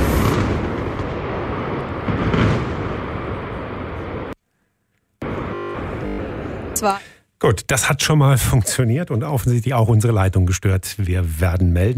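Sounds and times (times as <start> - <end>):
demolition blast bringing down an industrial boiler house and denitrification plants: 0.0 - 4.4
speech: 6.8 - 11.9.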